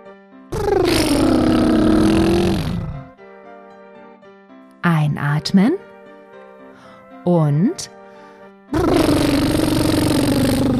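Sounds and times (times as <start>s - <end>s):
speech: 0.6s - 1.0s, 5.4s - 5.8s, 7.3s - 8.0s
person lip trilling to mimic a car engine hum as a breathing exercise: 0.6s - 3.1s, 8.8s - 10.7s.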